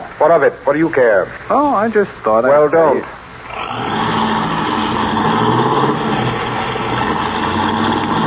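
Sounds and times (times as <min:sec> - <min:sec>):
speech: 0:00.2 - 0:03.2
car with faulty brakes speeding away, engine roaring: 0:03.5 - 0:08.2.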